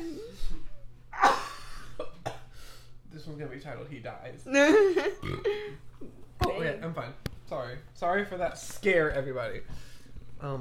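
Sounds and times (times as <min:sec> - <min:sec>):
person coughing after choking on water: 0:01.1 - 0:02.5
speech: 0:03.4 - 0:10.5.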